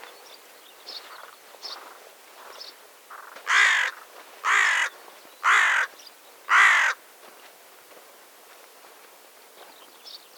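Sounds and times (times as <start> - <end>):
carrion crow Corvus corone cawing: 3.1 - 7.0.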